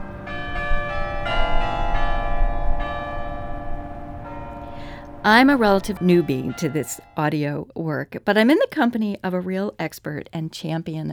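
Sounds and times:
low outdoor rumble: 0:00.0 - 0:07.5
church bells ringing in a steady peal: 0:00.0 - 0:07.6
speech: 0:05.2 - 0:11.1.

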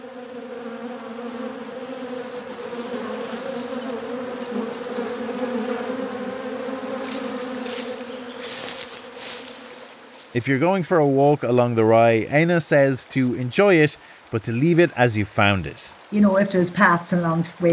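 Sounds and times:
bees buzzing around flowers: 0:00.0 - 0:10.8, 0:14.0 - 0:17.7
rustling: 0:06.8 - 0:10.4
speech: 0:10.4 - 0:17.7.

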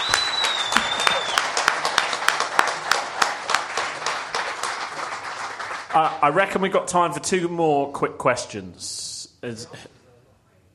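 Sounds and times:
faint whistle: 0:00.0 - 0:01.5
sharp individual claps: 0:00.0 - 0:06.2
audience applauding: 0:00.0 - 0:06.6
speech: 0:06.0 - 0:10.0.

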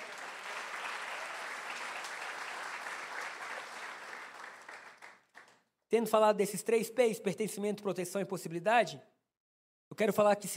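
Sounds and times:
large crowd applauding: 0:00.0 - 0:05.6
speech: 0:05.9 - 0:09.1, 0:10.0 - 0:10.5.

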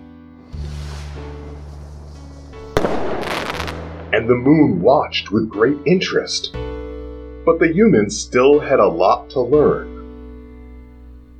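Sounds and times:
steady musical tone: 0:00.4 - 0:11.2
sharp loud burst: 0:00.5 - 0:04.9
rocket launch effect deep rumbling roar: 0:00.5 - 0:05.2
speech: 0:04.1 - 0:06.6, 0:07.5 - 0:09.9.

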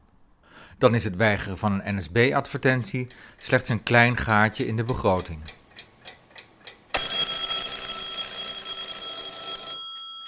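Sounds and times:
speech: 0:00.8 - 0:05.6
alarm clock ticking: 0:02.4 - 0:08.0
mechanical alarm clock bell ringing: 0:07.0 - 0:10.2.

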